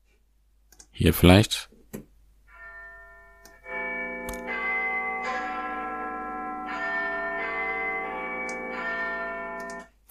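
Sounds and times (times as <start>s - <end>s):
speech: 1.0s - 1.7s
clock tower bell striking: 2.5s - 9.9s.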